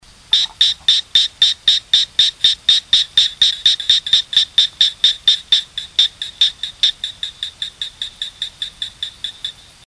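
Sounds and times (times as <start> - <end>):
Gephyromantis decaryi calling: 0.3 - 9.8.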